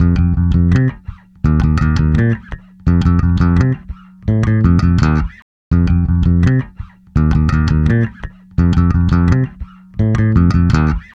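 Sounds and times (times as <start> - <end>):
pop electric bass playing pop rock in F major: 0.0 - 11.1.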